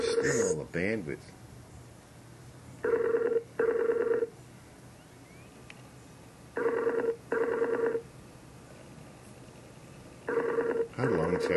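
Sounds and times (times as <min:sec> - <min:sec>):
ringback tone of an outgoing phone call: 0:00.0 - 0:00.5, 0:02.8 - 0:04.3, 0:06.6 - 0:08.0, 0:10.3 - 0:11.5
faint low hum: 0:00.0 - 0:11.5
speech: 0:00.2 - 0:01.4.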